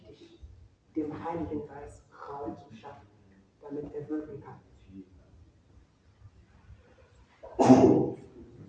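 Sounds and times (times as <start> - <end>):
speech: 0.9 - 5.1
person sneezing: 7.5 - 8.1.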